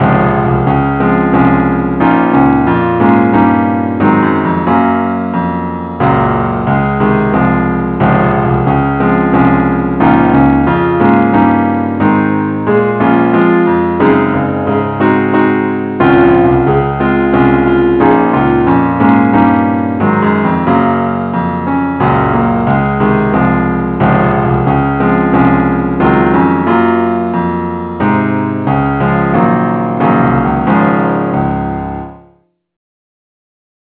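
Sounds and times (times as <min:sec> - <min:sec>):
keyboard playing in D flat: 0:00.0 - 0:32.3.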